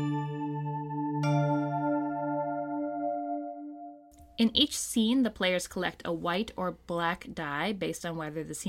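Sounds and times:
bright chime marking a scene transition: 0.0 - 3.8
speech: 4.4 - 8.6.

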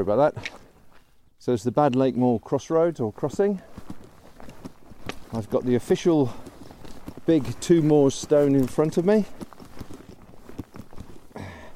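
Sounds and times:
speech: 0.0 - 0.6, 1.4 - 4.0, 5.3 - 6.4, 7.2 - 9.5
footsteps clattering across a metal cattle grid: 2.7 - 11.7.

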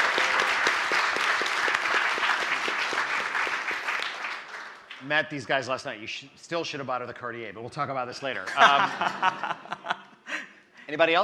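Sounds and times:
audience applause in a room: 0.0 - 5.1
speech: 5.1 - 9.8, 10.9 - 11.2
laughter: 8.4 - 10.5.

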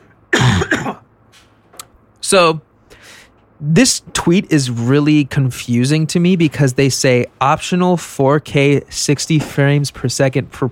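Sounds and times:
throaty coughs: 0.3 - 1.1
speech: 2.3 - 2.7, 3.6 - 10.6
faint breath: 2.8 - 3.4.

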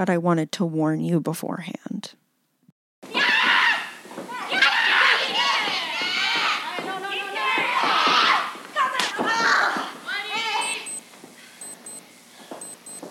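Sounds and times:
speech: 0.0 - 2.2
woman screaming and yelling: 3.1 - 10.9.

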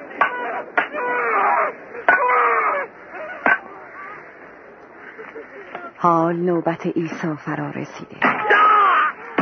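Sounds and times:
men screaming and wailing as they are nailed to crosses: 0.2 - 3.4, 8.4 - 9.4
speech: 6.0 - 8.4.

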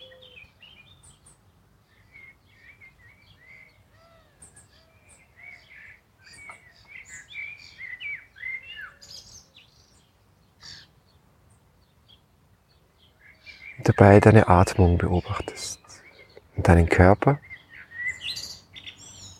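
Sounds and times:
birds singing and chirping outdoors: 0.0 - 19.3
speech: 13.9 - 15.8, 16.7 - 17.5.

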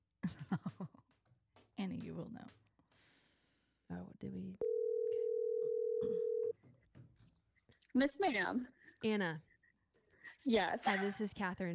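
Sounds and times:
speech: 0.5 - 1.0, 1.8 - 2.6, 4.2 - 4.7, 8.0 - 9.5, 10.4 - 11.7
telephone ringback tone from a phone call being placed: 4.6 - 6.5.

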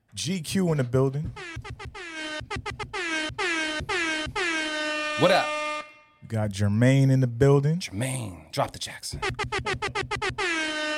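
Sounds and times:
speech: 0.2 - 2.7, 5.2 - 5.6, 6.3 - 10.4
air horn blasts: 1.4 - 6.2, 9.3 - 10.9.

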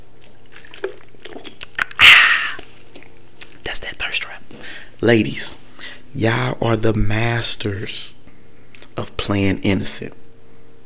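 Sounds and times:
person sipping water with wet slurps: 0.0 - 3.6
soft swallow of water: 0.7 - 2.8
speech: 5.0 - 5.6, 6.2 - 8.2, 9.0 - 10.2.

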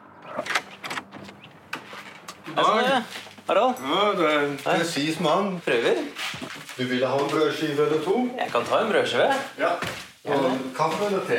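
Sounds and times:
heavy front door scraping and clunking: 0.0 - 3.4
large heavy black front door opening: 0.1 - 2.3
speech: 2.5 - 6.2, 6.8 - 11.3.

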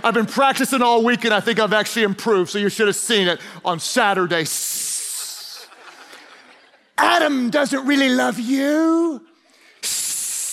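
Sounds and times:
speech: 0.0 - 4.8, 7.0 - 10.0
laughter: 4.8 - 7.2
voice imitating a snake with a sustained hiss: 9.8 - 10.5.

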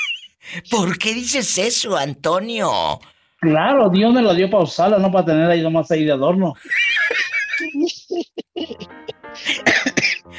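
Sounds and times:
laughter: 0.0 - 0.4, 6.6 - 10.2
speech: 0.6 - 6.8
person coughing: 9.4 - 10.3.

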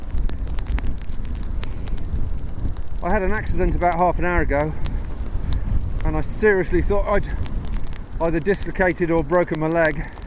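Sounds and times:
cold wind blowing outdoors: 0.0 - 10.2
faint crackles: 0.0 - 10.2
speech: 3.0 - 4.9, 6.1 - 7.4, 8.2 - 10.2.

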